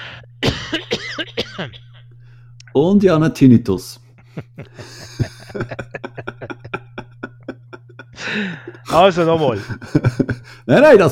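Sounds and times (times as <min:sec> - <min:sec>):
faint steady electrical hum: 0:00.0 - 0:11.1
hacking fit of coughs: 0:00.4 - 0:02.0, 0:04.4 - 0:07.8
speech: 0:02.8 - 0:04.9, 0:05.5 - 0:06.3, 0:08.3 - 0:11.1
laughter: 0:04.2 - 0:10.7.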